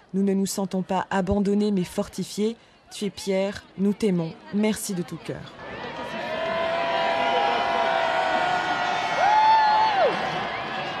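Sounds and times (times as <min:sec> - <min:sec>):
speech: 0:00.1 - 0:05.7
large enthusiastic crowd cheering and shouting in a square: 0:05.6 - 0:10.9.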